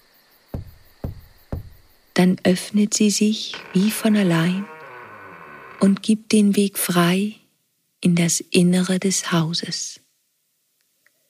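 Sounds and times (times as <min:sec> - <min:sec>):
metal door knocker striking a door: 0:00.6 - 0:02.0
speech: 0:02.2 - 0:04.7, 0:05.8 - 0:07.4, 0:08.0 - 0:10.0.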